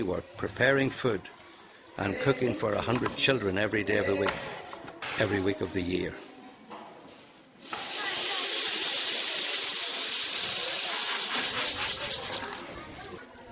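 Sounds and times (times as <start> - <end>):
speech: 0.0 - 1.4, 2.0 - 4.6, 5.2 - 6.3
water pouring steadily in a kitchen: 7.6 - 12.6.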